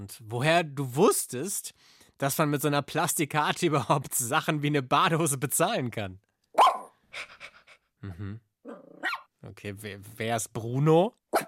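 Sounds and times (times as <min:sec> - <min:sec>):
speech: 0:00.0 - 0:06.3, 0:07.1 - 0:07.4, 0:08.0 - 0:11.4
dog barking: 0:06.6 - 0:07.0, 0:08.7 - 0:09.3.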